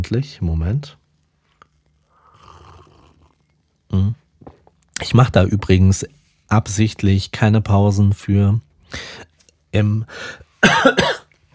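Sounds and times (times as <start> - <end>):
speech: 0.0 - 1.0, 3.9 - 4.2, 5.0 - 11.2
person coughing: 10.6 - 11.3.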